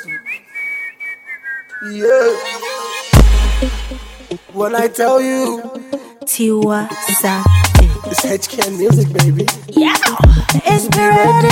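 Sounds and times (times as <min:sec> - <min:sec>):
person whistling a short bright tune: 0:00.0 - 0:03.0
speech: 0:01.8 - 0:02.9, 0:03.6 - 0:11.5
backing music: 0:02.3 - 0:05.9, 0:06.6 - 0:11.5
loud booming hit: 0:03.2 - 0:04.4.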